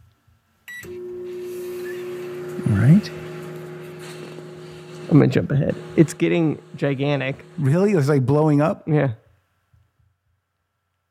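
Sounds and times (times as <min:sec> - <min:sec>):
microwave oven running with steady electrical hum: 0:00.7 - 0:08.9
speech: 0:03.0 - 0:03.2, 0:05.1 - 0:09.2.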